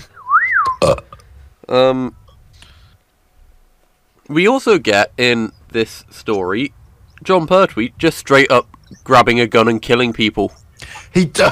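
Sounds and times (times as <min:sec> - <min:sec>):
short rising-and-falling whistle: 0:00.2 - 0:00.8
loud drawn-out burp: 0:00.6 - 0:01.2
speech: 0:01.7 - 0:02.2, 0:04.3 - 0:11.5
breathy burst of noise: 0:02.4 - 0:03.0.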